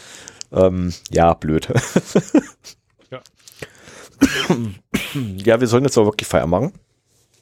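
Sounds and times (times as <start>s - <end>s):
speech: 0.5s - 6.9s
laughter: 1.7s - 2.8s
person coughing harshly: 4.2s - 5.4s.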